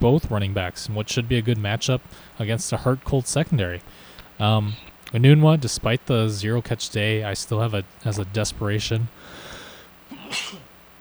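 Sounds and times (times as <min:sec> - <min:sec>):
speech: 0:00.0 - 0:09.4
single sharp sneeze: 0:10.1 - 0:10.7.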